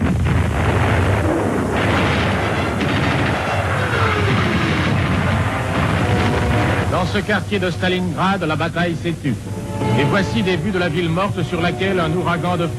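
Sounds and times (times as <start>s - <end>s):
German artillery batteries opening fire: 0.0s - 8.7s
speech: 7.1s - 12.7s.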